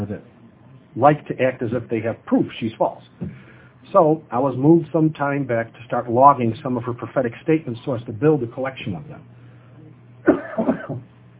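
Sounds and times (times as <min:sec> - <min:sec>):
speech: 0:00.0 - 0:00.4, 0:01.0 - 0:09.3
low steady hum: 0:00.0 - 0:11.3
man's hacking throaty cough with throat clearing: 0:10.2 - 0:11.1.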